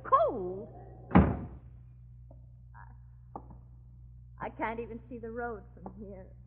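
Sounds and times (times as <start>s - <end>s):
low steady hum: 0.0s - 6.4s
door shutting with a heavy thud during a snowstorm: 1.1s - 1.6s
speech: 4.6s - 6.4s.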